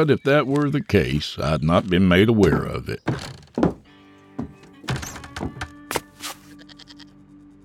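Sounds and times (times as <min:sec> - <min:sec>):
speech: 0:00.0 - 0:03.4
wooden saloon doors swinging: 0:02.5 - 0:05.8
faint sustained creak: 0:03.1 - 0:05.8.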